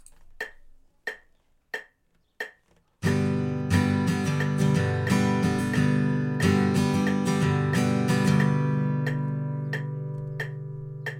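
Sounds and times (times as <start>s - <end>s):
fingerstyle guitar at 90 bpm: 3.0s - 11.1s.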